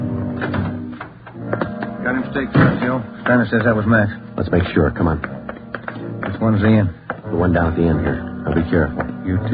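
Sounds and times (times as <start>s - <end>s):
door pulled shut quickly: 0.1s - 3.4s
speech: 2.4s - 5.4s, 6.4s - 9.5s.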